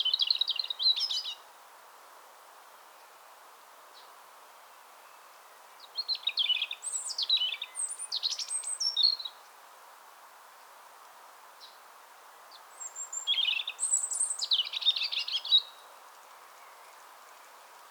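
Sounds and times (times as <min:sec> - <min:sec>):
European robin Erithacus rubecula singing: 0:00.0 - 0:01.4, 0:05.0 - 0:09.5, 0:12.5 - 0:15.9
low background noise: 0:00.0 - 0:17.8.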